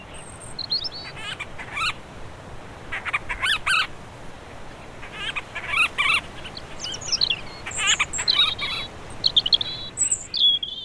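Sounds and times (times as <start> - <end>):
Monteiro's storm petrel calls: 0.1 - 2.0, 2.9 - 3.9, 5.0 - 10.8.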